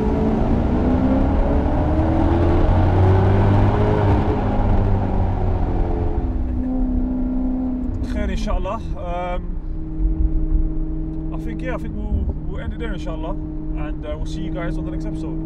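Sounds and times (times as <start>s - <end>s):
car engine revving: 0.0s - 15.4s
road and wind noise: 0.0s - 15.4s
speech: 11.6s - 15.4s.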